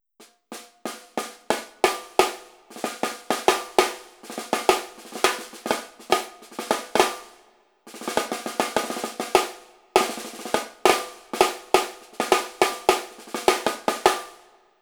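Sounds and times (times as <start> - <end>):
Sonor 10-inch jungle snare drum: 0.0 - 14.6.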